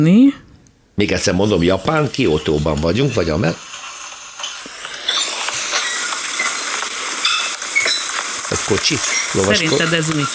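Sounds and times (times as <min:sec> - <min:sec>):
speech: 0:00.0 - 0:00.4, 0:01.0 - 0:03.7, 0:08.7 - 0:10.3
nightingale floor squeaking underfoot: 0:05.1 - 0:10.3.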